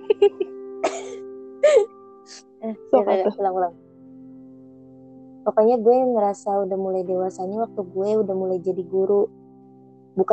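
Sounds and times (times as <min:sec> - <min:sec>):
speech: 0:00.2 - 0:01.0, 0:01.7 - 0:03.8, 0:05.4 - 0:09.4
person clearing throat: 0:00.8 - 0:01.8
person coughing: 0:00.8 - 0:01.9.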